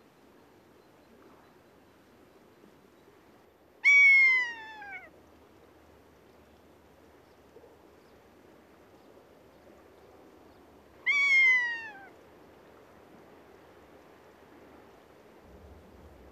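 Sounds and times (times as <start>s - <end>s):
Rough-legged Buzzard high shrill mewing cry: 3.8s - 5.1s, 11.0s - 12.1s.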